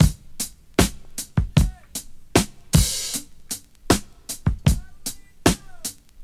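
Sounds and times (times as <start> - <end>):
77 bpm drum beat in D sharp with kick tuned to D sharp: 0.0 - 6.2
kick drum tuned to the D sharp note: 0.8 - 2.0, 4.5 - 4.8.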